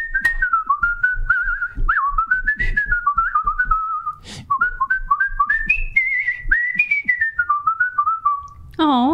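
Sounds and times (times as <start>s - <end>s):
person whistling a bright bouncy cartoon theme tune: 0.0s - 8.6s.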